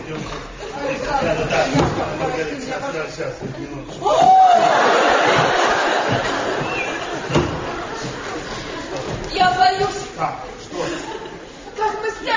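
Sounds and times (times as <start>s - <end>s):
laughter: 0.1s - 2.5s, 3.5s - 9.8s, 10.5s - 12.3s
thud: 5.3s - 8.1s
toilet door slamming: 7.2s - 8.1s.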